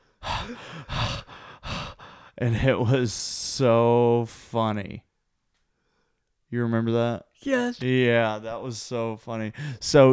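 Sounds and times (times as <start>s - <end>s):
person imitating heavy labored panting while running: 0.2s - 2.4s, 7.4s - 7.8s
speech: 0.5s - 1.3s, 2.4s - 5.1s, 6.5s - 10.1s.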